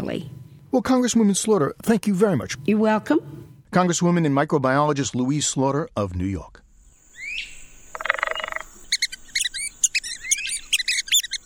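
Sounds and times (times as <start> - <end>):
speech: 0.1 - 6.6
red-cockaded woodpecker calls: 6.9 - 11.4.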